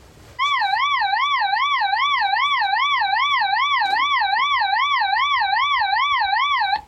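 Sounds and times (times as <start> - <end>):
nuclear attack warning siren wailing in a fast warble: 0.4 - 6.8.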